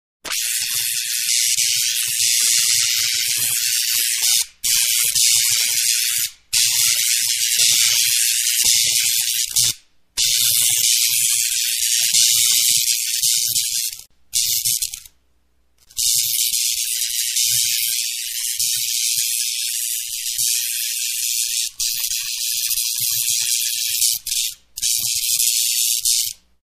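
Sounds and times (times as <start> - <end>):
electricity: 0.2 - 15.1, 15.8 - 26.4.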